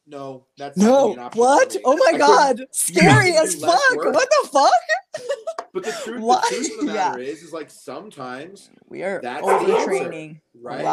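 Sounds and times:
speech: 0.1 - 10.9
people laughing: 0.7 - 8.6, 9.3 - 10.1
dog barking: 9.4 - 10.1.

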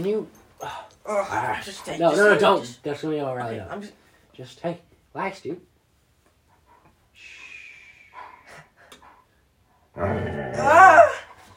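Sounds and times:
speech: 0.0 - 5.7, 10.0 - 11.2
dog moaning: 1.0 - 2.4, 9.9 - 11.3.

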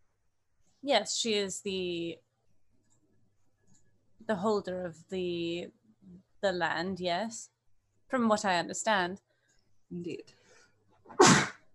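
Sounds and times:
speech: 0.8 - 2.3, 4.3 - 7.5, 8.1 - 9.2, 9.9 - 10.4
person sneezing: 11.1 - 11.6.

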